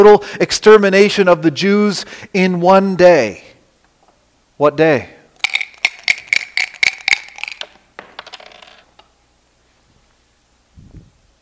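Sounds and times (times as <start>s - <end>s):
speech: 0.0s - 3.5s, 4.6s - 5.2s
dice clattering across a hard surface: 5.4s - 9.1s.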